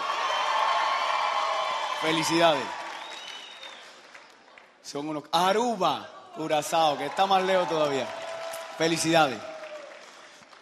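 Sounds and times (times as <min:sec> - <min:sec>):
crowd shouting and cheering: 0:00.0 - 0:04.0, 0:05.9 - 0:10.2
speech: 0:02.0 - 0:02.8, 0:04.9 - 0:08.2, 0:08.8 - 0:09.5.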